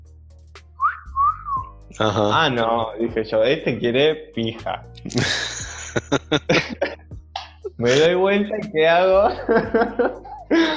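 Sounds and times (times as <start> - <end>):
person imitating a catcall whistle: 0.8 - 1.7
speech: 2.0 - 7.0, 7.8 - 10.7
laughter: 5.1 - 7.0, 9.2 - 10.7.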